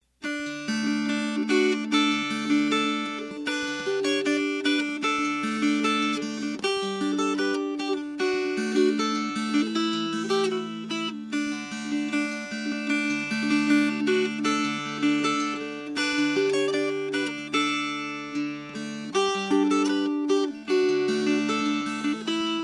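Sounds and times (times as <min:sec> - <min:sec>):
fingerpicked guitar: 0:00.2 - 0:22.6.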